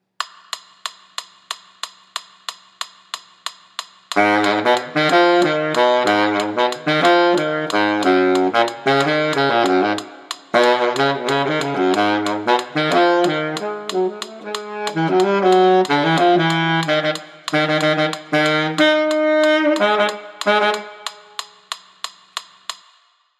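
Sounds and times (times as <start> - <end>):
baritone saxophone playing latin music: 4.1 - 21.7.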